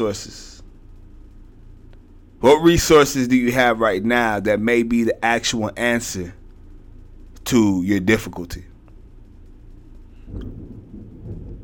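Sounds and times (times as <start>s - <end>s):
speech: 0.0s - 0.5s, 2.4s - 6.4s, 7.4s - 8.7s, 10.3s - 10.7s
brief crackle of thunder: 9.3s - 11.6s
deep low rumble of thunder: 10.1s - 11.6s.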